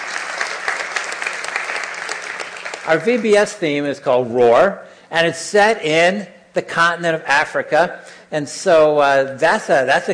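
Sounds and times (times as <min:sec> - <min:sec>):
church congregation clapping: 0:00.0 - 0:03.6
speech: 0:02.9 - 0:10.1.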